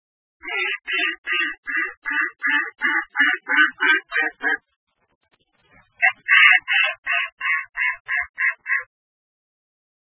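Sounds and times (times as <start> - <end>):
Mallard giving harsh nasal quacks: 0.4 - 4.7, 6.0 - 8.9.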